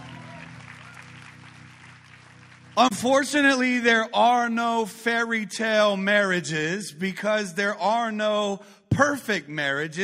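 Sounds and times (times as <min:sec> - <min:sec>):
audience applauding in a large room: 0:00.0 - 0:03.0
speech: 0:02.8 - 0:10.0.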